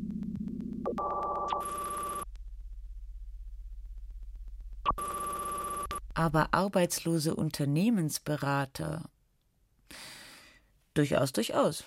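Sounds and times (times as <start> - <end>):
low steady hum: 0.0 - 9.8
electronic telephone ringing: 1.0 - 2.3, 4.9 - 6.0
speech: 6.2 - 9.1, 11.0 - 11.8.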